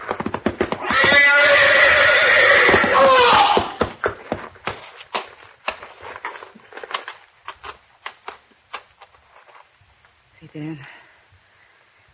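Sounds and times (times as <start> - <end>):
horse hoof stamps and clatters: 0.0 - 9.6
horse in a stall whinnying: 0.6 - 4.0.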